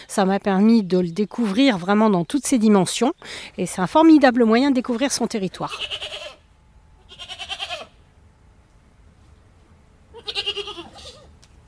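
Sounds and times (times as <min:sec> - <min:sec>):
speech: 0:00.2 - 0:06.2
herd of goats with kids bleating: 0:05.6 - 0:06.4, 0:07.0 - 0:08.0, 0:10.1 - 0:11.3.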